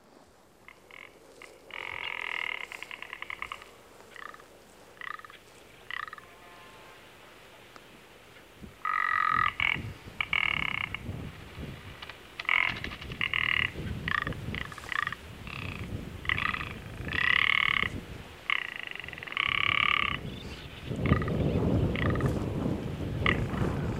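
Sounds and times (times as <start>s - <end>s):
rock ptarmigan giving dry croaking rattles: 0.6s - 4.4s, 5.0s - 6.3s, 8.8s - 20.3s, 21.0s - 22.4s
steady rush of wind: 8.5s - 23.9s.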